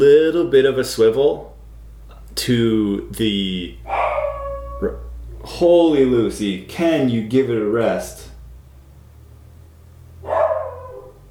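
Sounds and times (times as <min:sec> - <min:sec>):
speech: 0:00.0 - 0:01.6, 0:02.4 - 0:03.9, 0:04.8 - 0:08.3
low steady hum: 0:00.0 - 0:11.3
dog barking: 0:03.8 - 0:05.1, 0:10.2 - 0:11.3.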